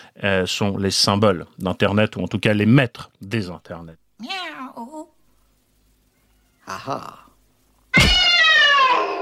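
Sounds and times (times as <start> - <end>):
speech: 0.2 - 4.9, 6.7 - 7.2
person imitating a cat meowing: 6.5 - 7.3, 8.0 - 9.1.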